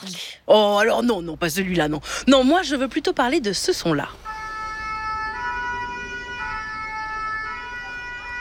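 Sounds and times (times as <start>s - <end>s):
speech: 0.5s - 4.3s
fire engine siren: 4.3s - 8.3s.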